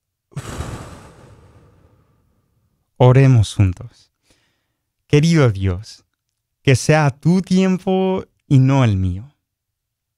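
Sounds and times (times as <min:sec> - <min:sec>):
deep airy breath exhaled: 0:00.3 - 0:02.7
speech: 0:03.0 - 0:04.1, 0:05.1 - 0:06.0, 0:06.6 - 0:09.3.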